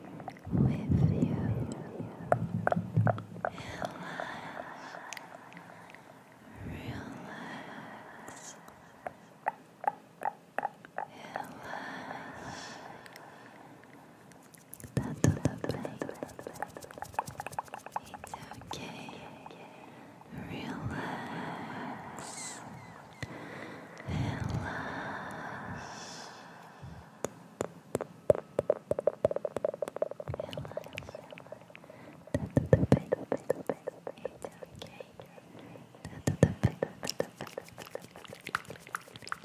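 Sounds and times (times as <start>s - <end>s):
soft whispery breaths: 0.0s - 9.7s, 11.0s - 39.4s
wet mouth sounds with clicks and smacks: 1.7s - 4.0s, 9.0s - 11.1s, 14.4s - 19.4s, 27.6s - 39.4s.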